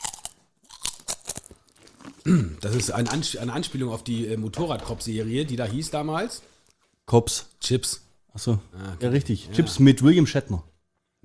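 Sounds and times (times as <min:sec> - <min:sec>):
person chewing crunchy food: 0:00.0 - 0:03.7
speech: 0:02.2 - 0:06.5, 0:07.1 - 0:11.2.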